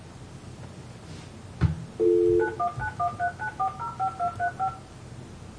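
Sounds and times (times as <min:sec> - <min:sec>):
touch-tone telephone keypad dialing beeps: 0:02.3 - 0:04.8.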